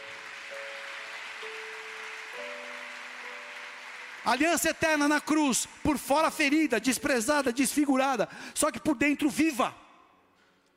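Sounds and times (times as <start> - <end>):
congregation applauding: 0.0 - 6.7
speech: 4.2 - 9.8.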